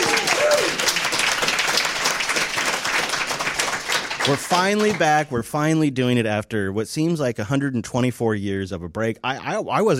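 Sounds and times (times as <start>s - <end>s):
faint cheers or whistles: 0.0s - 0.9s
live audience applause at a Linux festival event: 0.0s - 5.2s
speech: 4.3s - 9.9s.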